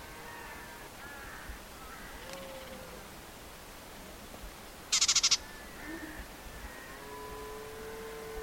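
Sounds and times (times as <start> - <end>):
soft hiss: 0.0 - 8.4
White-throated warbler clicking call: 4.9 - 5.7.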